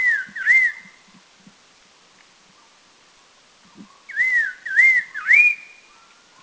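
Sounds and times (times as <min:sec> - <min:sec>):
red-faced liocichla whistled calls at Doi Lang in northern Thailand: 0:00.0 - 0:01.0, 0:03.7 - 0:06.4.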